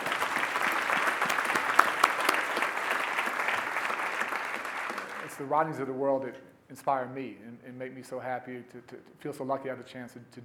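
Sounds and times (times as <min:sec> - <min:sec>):
audience applause: 0:00.0 - 0:05.5
speech: 0:05.4 - 0:10.4.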